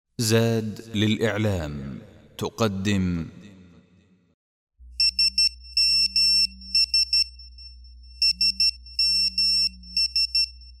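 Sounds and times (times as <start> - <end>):
speech: 0.2 - 3.4
mobile phone ringing with quick high beeps and low tones: 5.0 - 7.5, 8.2 - 10.7.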